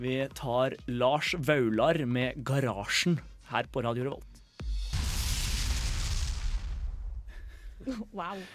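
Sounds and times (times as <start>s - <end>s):
speech: 0.0s - 4.4s, 7.8s - 8.5s
explosion: 4.6s - 7.8s.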